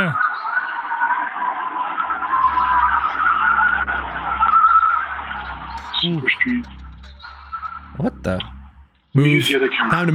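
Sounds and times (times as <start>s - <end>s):
tire squeal from cars peeling out: 0.7s - 9.0s
low engine rumble: 2.1s - 9.0s
speech: 6.0s - 6.8s, 8.0s - 8.6s, 9.2s - 10.1s.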